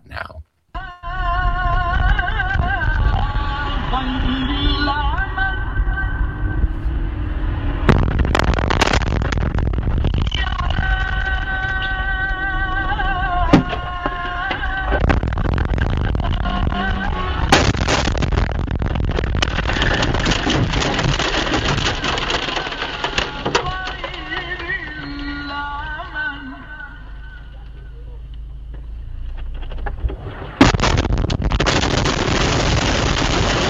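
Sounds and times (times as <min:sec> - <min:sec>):
constant low rumble: 0:00.8 - 0:33.6
steady whining tones: 0:03.1 - 0:31.0
airstrike explosion blasts heard from inside a car: 0:07.8 - 0:10.3, 0:15.0 - 0:22.0, 0:30.1 - 0:33.6.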